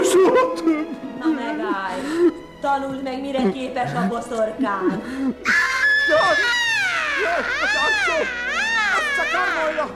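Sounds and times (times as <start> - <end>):
laughter: 0.0 - 2.1, 3.4 - 9.8
speech: 2.6 - 6.6, 7.2 - 8.4, 9.2 - 9.9
person's voice yowling like an angry cat: 5.5 - 9.9.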